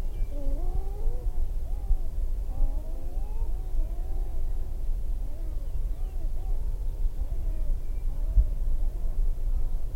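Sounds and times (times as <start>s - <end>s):
sharp-tailed grouse whining calls: 0.1s - 9.8s.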